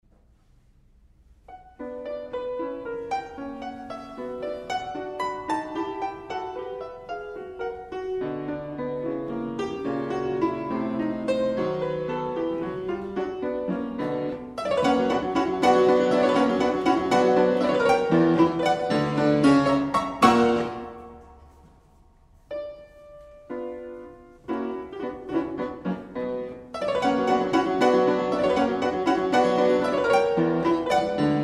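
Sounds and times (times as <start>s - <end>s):
fortepiano playing a piano sonata: 0.0s - 31.4s.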